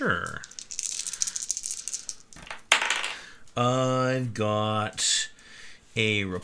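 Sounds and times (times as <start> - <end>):
dice rattling in a shaker or hand: 0.0 - 3.6
speech: 3.6 - 5.1, 6.0 - 6.4.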